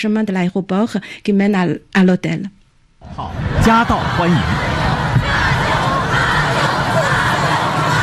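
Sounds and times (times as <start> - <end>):
speech: 0.0 - 5.5
huge crowd at an airport chanting welcome in unison: 3.0 - 8.0
sustained collective crowd shouts: 3.1 - 8.0.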